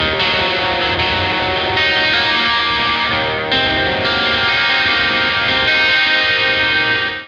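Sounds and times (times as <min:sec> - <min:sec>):
high guitar E flat 9 chord: 0:00.0 - 0:07.2.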